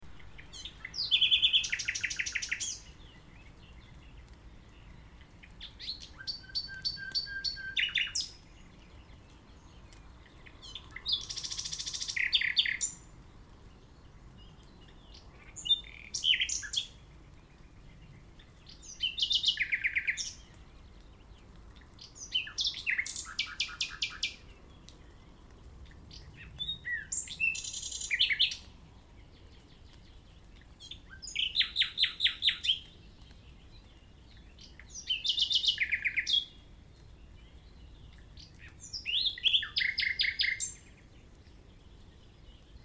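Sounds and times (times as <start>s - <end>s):
nightingale: 0.1s - 13.1s, 18.5s - 20.5s, 22.0s - 24.5s, 26.1s - 28.7s, 29.7s - 36.6s, 37.6s - 41.1s.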